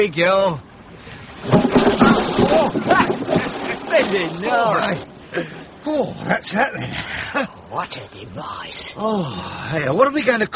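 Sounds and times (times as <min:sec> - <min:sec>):
speech: 0:00.0 - 0:00.7, 0:01.4 - 0:10.5
rising wind before a storm: 0:00.0 - 0:10.5
rain before a storm: 0:00.9 - 0:07.5.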